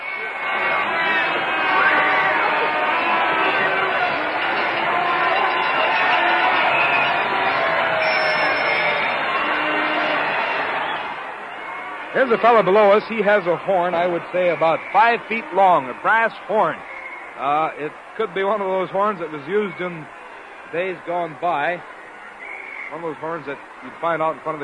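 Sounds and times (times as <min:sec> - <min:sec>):
people shouting: 0:00.0 - 0:14.2
large crowd roaring and cheering: 0:00.0 - 0:24.6
speech: 0:12.2 - 0:21.9, 0:22.9 - 0:24.6.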